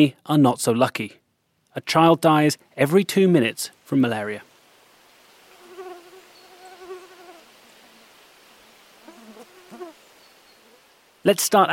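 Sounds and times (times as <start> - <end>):
speech: 0.0 - 1.2, 1.8 - 4.5, 11.2 - 11.7
faint hiss: 0.0 - 11.7
mosquito buzzing: 5.5 - 7.5, 9.0 - 10.0.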